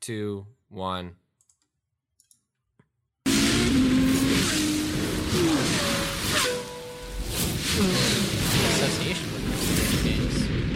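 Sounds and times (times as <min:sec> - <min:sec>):
speech: 0:00.0 - 0:01.2, 0:07.8 - 0:08.1, 0:08.8 - 0:10.7
car engine revving: 0:03.3 - 0:09.6.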